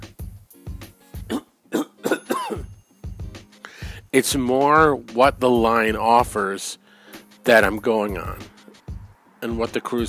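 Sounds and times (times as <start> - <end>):
person clearing throat: 1.2 - 2.7
person coughing: 1.3 - 2.8
speech: 4.1 - 6.8, 7.4 - 8.5, 9.4 - 10.0.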